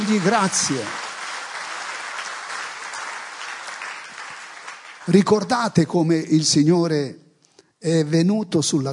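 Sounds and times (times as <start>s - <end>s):
audience at a church service applauding: 0.0s - 5.7s
speech: 0.1s - 1.0s, 5.1s - 7.2s, 7.8s - 8.9s.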